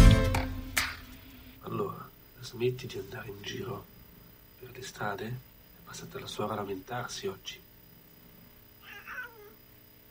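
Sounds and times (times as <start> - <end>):
faint hum: 0.1 - 10.0
speech: 2.4 - 4.0, 4.6 - 7.6
cat meowing: 8.8 - 9.6.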